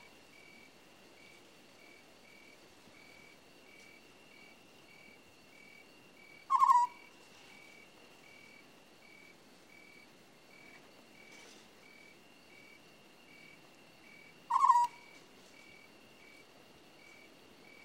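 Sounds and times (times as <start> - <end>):
faint high hum: 0.0 - 17.8
pulsing insect chirps: 4.3 - 10.6, 11.8 - 16.5
African scops owl giving short purring trilled notes: 6.4 - 7.1, 14.1 - 15.2.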